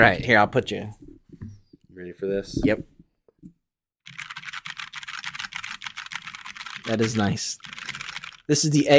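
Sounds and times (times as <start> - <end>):
speech: 0.0 - 1.0, 2.0 - 2.9, 6.9 - 7.7, 8.5 - 8.9
typing on a backlit mechanical keyboard: 4.1 - 8.5.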